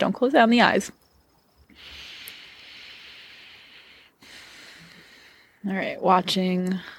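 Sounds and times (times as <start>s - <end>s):
speech: 0.0s - 1.0s, 5.6s - 6.9s
slow deep breathing close to the mic: 1.6s - 5.7s.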